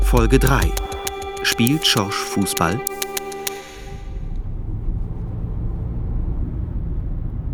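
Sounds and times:
speech: 0:00.1 - 0:00.8, 0:01.4 - 0:03.0
low rumble of road noise inside a moving car: 0:03.9 - 0:07.5.

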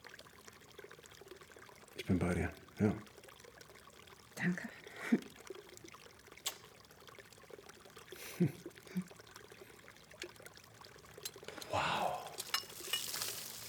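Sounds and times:
water trickling and pouring from a small garden waterfall: 0:00.0 - 0:13.6
speech: 0:02.1 - 0:03.1, 0:04.4 - 0:05.3, 0:08.4 - 0:09.1
faint voice-like sounds: 0:11.6 - 0:12.4.

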